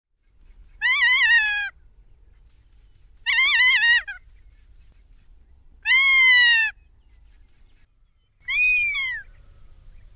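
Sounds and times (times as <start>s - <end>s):
Ferruginous hawk harsh wavering screaming calls: 0.8s - 1.8s, 3.2s - 4.2s, 8.5s - 9.3s.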